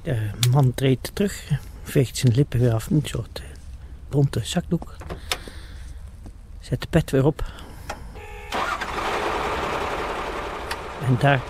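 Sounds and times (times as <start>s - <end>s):
speech: 0.0s - 3.5s, 4.1s - 5.4s, 6.6s - 7.7s, 11.0s - 11.4s
vehicle engine starting and idling during a burial ceremony: 7.9s - 11.4s.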